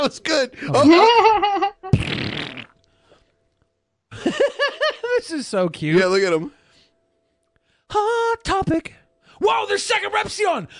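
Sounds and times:
speech: 0.0 - 2.5, 5.2 - 6.6, 7.9 - 10.7
loud sputtering fart: 1.9 - 2.9.

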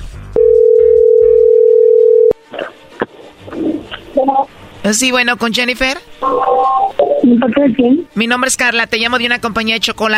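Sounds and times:
telephone ringing tone: 0.4 - 2.4
speech: 4.8 - 10.1.

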